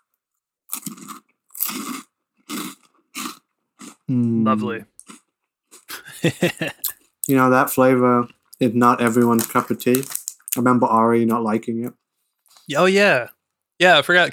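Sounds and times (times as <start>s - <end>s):
biting and chewing a very crunchy snack: 0.7s - 4.1s, 5.0s - 5.9s, 8.5s - 10.7s
person humming appreciatively: 4.1s - 4.4s
speech: 4.1s - 4.9s, 6.2s - 12.0s, 12.7s - 14.3s
laughter: 5.9s - 6.9s.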